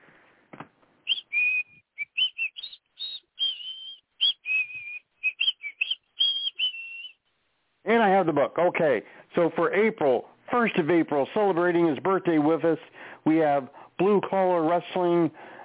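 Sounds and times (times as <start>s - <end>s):
person whistling a show tune: 1.1s - 7.2s
speech: 7.9s - 15.6s.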